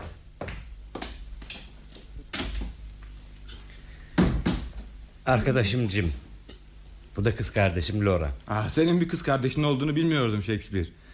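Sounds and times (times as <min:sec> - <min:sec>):
wooden knocks and clunks of a door being opened: 0:04.2 - 0:04.7
speech: 0:05.3 - 0:06.3, 0:07.2 - 0:11.0.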